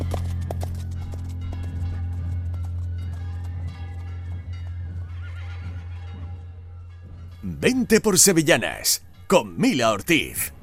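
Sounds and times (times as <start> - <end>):
horse hooves clip-clopping as riders arrive at El Rocío: 0.0 - 6.5
speech: 7.4 - 10.6.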